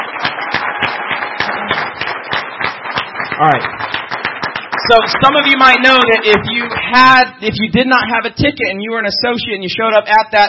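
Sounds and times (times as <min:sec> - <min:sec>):
crowd applauding with many hands clapping: 0:00.0 - 0:07.2
speech: 0:03.4 - 0:03.9, 0:04.9 - 0:10.4.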